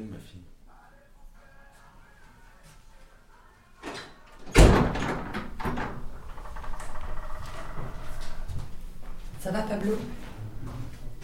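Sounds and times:
low noise: 0.0 - 11.2
door shutting thud: 3.8 - 8.4
speech: 9.5 - 10.2.

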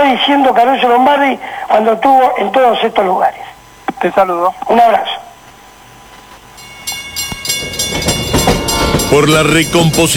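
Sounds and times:
speech: 0.1 - 5.2, 9.1 - 10.1
train wheels clacking on track joints in Argentina: 7.2 - 10.1.

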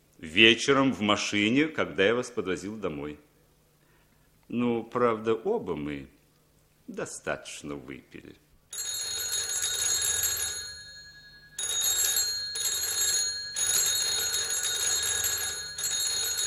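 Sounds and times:
speech: 0.2 - 3.3, 4.5 - 6.2, 6.9 - 8.9
telephone bell ringing in a Moscow apartment at night: 8.7 - 16.4.

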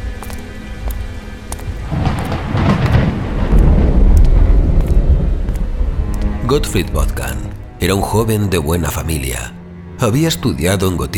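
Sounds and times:
thunder rumbling in a storm over narrow old streets of Paris: 1.7 - 7.8
speech: 6.5 - 11.1.

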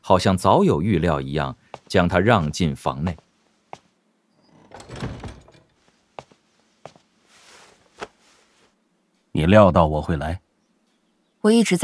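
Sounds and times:
faint noise: 0.0 - 11.8
speech: 0.1 - 3.2, 9.4 - 10.4, 11.4 - 11.8
inn guest room door opening with a soft scrape: 4.4 - 5.8
light thuds and knocks: 4.6 - 6.3.

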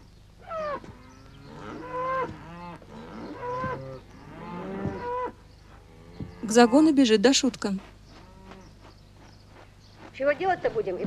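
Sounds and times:
cows lowing in a pen: 0.4 - 7.0
speech: 6.5 - 7.9, 10.2 - 11.0.

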